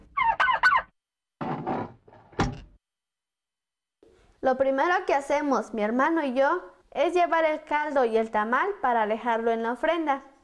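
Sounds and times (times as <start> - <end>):
village turkeys gobbling: 0.0 - 0.9
speech: 4.4 - 10.3.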